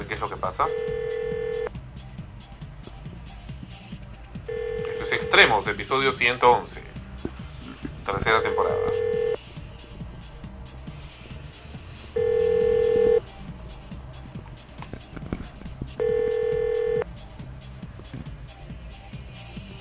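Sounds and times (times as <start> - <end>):
speech: 0.2 - 1.0, 5.3 - 6.9, 8.1 - 9.0
unanswered telephone call ringing with electronic ring tones: 0.6 - 1.7, 4.5 - 5.5, 8.4 - 9.4, 12.2 - 13.2, 16.0 - 17.0.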